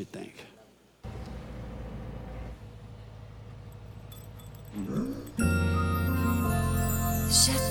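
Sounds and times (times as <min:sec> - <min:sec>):
speech: 0:00.0 - 0:00.5
two dogs whining in a played video: 0:03.6 - 0:07.6.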